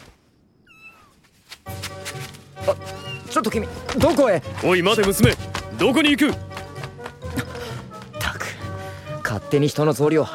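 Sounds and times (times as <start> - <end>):
cat meowing: 0.6 - 1.2
speech: 2.7 - 6.5, 9.3 - 10.3.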